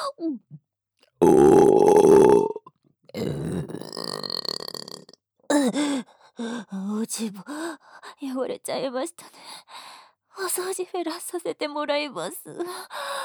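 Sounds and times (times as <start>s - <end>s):
speech: 0.1s - 1.9s, 7.1s - 7.6s, 8.2s - 9.4s, 10.4s - 13.0s
vocal noises: 1.2s - 5.1s
person burping: 1.2s - 5.7s.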